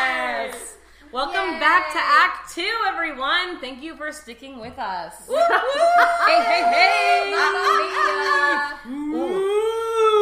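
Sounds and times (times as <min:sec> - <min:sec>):
speech: 0:01.2 - 0:09.5
laughter: 0:05.3 - 0:09.6
person mimicking a whale call with a rising moan: 0:08.8 - 0:10.2.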